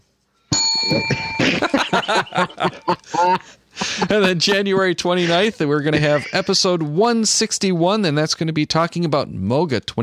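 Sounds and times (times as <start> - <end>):
bright bell ringing: 0.5 - 3.2
speech: 0.8 - 1.3, 4.1 - 10.0
people chuckling: 1.0 - 7.0.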